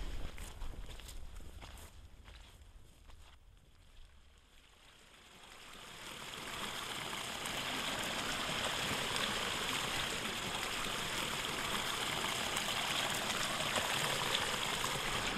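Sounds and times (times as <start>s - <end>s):
footsteps crunching outdoors: 0.0s - 3.4s
soft wind: 0.0s - 15.3s
water pouring down a small outlet: 5.2s - 15.3s.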